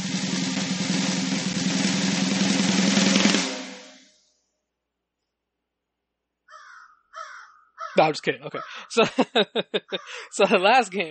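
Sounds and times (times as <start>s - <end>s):
loud sustained noisy roll: 0.0s - 4.1s
crow cawing: 6.5s - 8.9s, 9.9s - 10.3s
speech: 8.0s - 11.0s
laughter: 8.3s - 11.0s.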